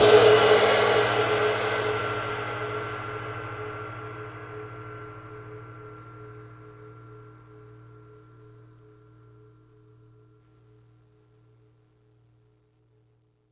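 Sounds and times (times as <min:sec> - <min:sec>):
big ride crash cymbal single hits: 0:00.0 - 0:06.7.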